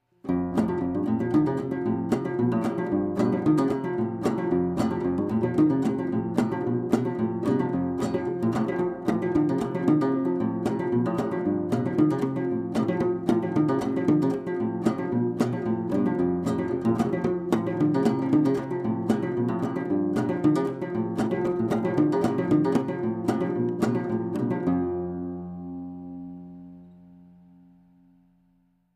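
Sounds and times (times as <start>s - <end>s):
minstrel banjo: 0.2s - 27.4s.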